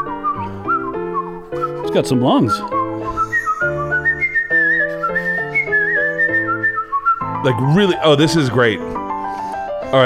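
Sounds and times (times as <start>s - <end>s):
person whistling a loud warbling melody with vibrato: 0.0s - 8.0s
instrumental backing chords: 0.0s - 10.0s
speech: 1.5s - 3.2s, 7.4s - 9.0s.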